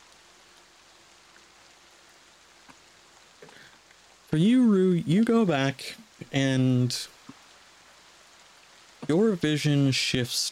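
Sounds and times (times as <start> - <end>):
light rain falling in the woods: 0.0 - 10.5
speech: 4.3 - 7.2, 9.1 - 10.5.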